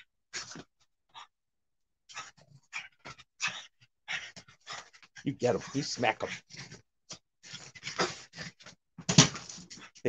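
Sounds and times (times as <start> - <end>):
dog panting in breathy bursts: 2.1 - 8.7
speech: 5.2 - 6.6.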